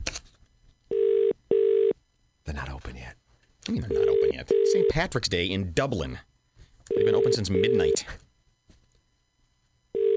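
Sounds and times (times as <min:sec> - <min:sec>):
electronic telephone ringing tone: 0:00.9 - 0:02.0, 0:03.9 - 0:05.0, 0:06.9 - 0:08.1, 0:09.9 - 0:10.1
speech: 0:02.5 - 0:06.3, 0:07.0 - 0:08.2.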